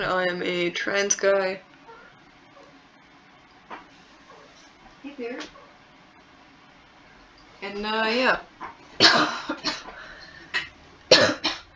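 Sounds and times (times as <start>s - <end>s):
speech: 0.0s - 1.7s, 5.1s - 5.6s, 7.6s - 10.0s
person who recently had COVID coughing harshly: 9.0s - 9.9s, 11.1s - 11.7s.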